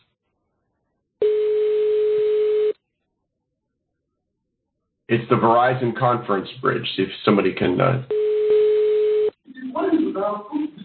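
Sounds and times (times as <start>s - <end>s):
electronic telephone ring tone over a conference bridge phone line: 1.2s - 2.8s, 8.1s - 9.3s
speech: 5.1s - 8.2s.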